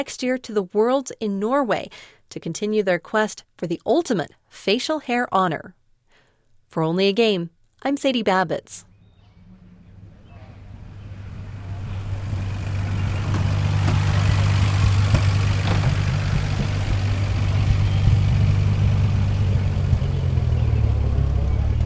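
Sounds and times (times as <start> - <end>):
speech: 0.0 - 5.8, 6.7 - 8.9
1936 Bentley Le Mans Special vintage car engine idling: 9.4 - 21.8.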